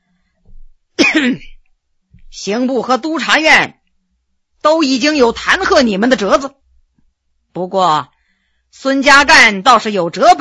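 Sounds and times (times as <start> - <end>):
man's light throat-clearing cough: 1.0 - 1.6
speech: 1.2 - 1.5, 2.3 - 3.8, 4.6 - 6.6, 7.6 - 8.1, 8.7 - 10.4.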